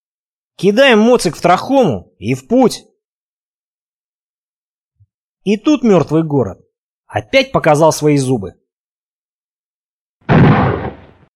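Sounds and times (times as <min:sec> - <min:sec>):
speech: 0:00.6 - 0:02.9, 0:05.4 - 0:08.6
loud rifle shot: 0:10.3 - 0:11.3.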